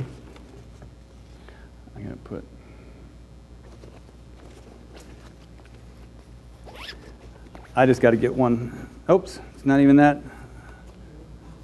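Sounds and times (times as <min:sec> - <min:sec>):
soft fumbling and handling noises: 0:00.0 - 0:01.3, 0:03.6 - 0:08.3
low steady hum: 0:00.0 - 0:11.6
speech: 0:02.2 - 0:02.6, 0:07.8 - 0:10.4
zipper being pulled open: 0:06.6 - 0:07.8.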